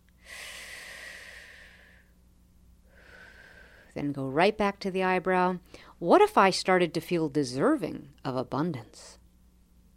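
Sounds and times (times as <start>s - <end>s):
deep slow breath drawn in: 0.2s - 2.1s, 2.9s - 3.9s
speech: 4.0s - 9.2s.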